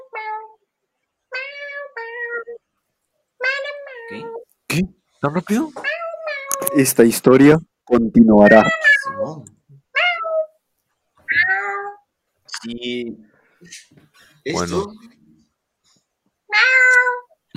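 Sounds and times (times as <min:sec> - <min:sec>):
cat meowing: 0:00.0 - 0:00.6, 0:01.3 - 0:02.6, 0:03.4 - 0:04.4, 0:05.7 - 0:06.8, 0:08.4 - 0:10.5, 0:11.2 - 0:12.1, 0:16.5 - 0:17.4
speech: 0:04.1 - 0:05.8, 0:06.6 - 0:09.6, 0:12.6 - 0:15.2.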